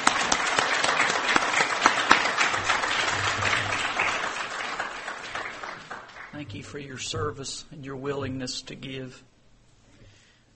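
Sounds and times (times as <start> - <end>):
crowd applauding: 0.0 - 6.8
speech: 6.6 - 9.3.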